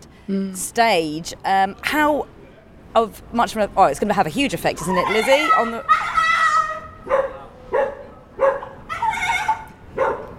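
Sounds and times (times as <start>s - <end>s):
speech: 0.3s - 6.2s
dog making strained high-pitched barks: 5.5s - 10.3s.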